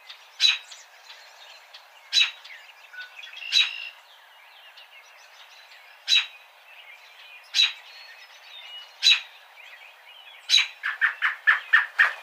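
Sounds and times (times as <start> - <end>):
American robin sharp chip calls: 0.0 - 12.2.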